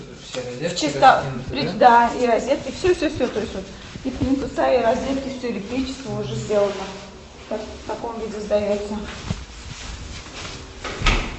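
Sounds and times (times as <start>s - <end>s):
speech: 0.4s - 9.3s
door being handled in a newly finished two-room apartment: 10.8s - 11.3s.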